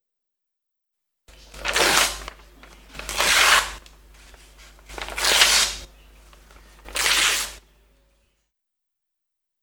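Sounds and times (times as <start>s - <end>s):
paper tearing: 1.3s - 7.6s.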